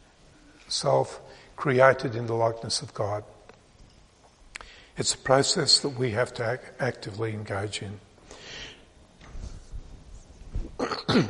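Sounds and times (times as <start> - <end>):
speech: 0.7 - 3.4, 5.0 - 8.6
person clearing throat into a microphone: 10.8 - 11.2
person coughing into a microphone: 10.8 - 11.2.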